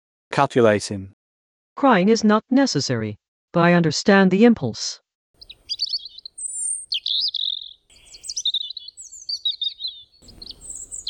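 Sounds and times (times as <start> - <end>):
speech: 0.4 - 1.2, 1.8 - 5.0
small bird peeping and chirping for food: 5.4 - 11.0.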